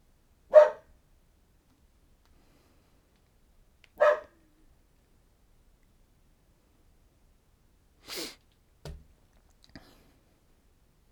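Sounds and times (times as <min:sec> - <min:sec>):
dog barking: 0:00.5 - 0:00.9, 0:04.0 - 0:04.4.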